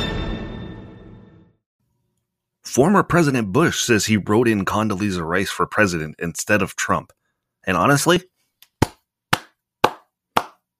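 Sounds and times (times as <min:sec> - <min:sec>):
speech: 0:02.7 - 0:08.3
sharp hand claps: 0:08.6 - 0:10.7.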